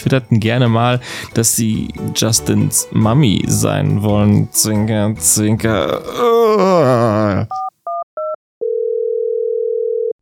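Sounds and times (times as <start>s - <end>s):
speech: 0.0s - 7.6s
steady telephone tone: 7.5s - 10.2s.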